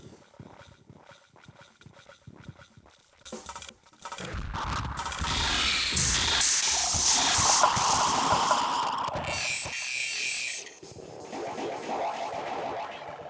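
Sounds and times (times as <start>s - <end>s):
reversed glitch sound: 3.4s - 12.9s.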